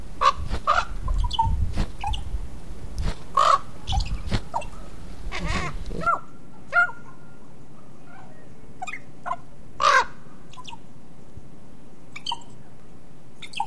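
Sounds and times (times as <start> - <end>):
rumble: 0.0 - 6.8
raven croaking, gurgling and clicking: 3.0 - 6.2.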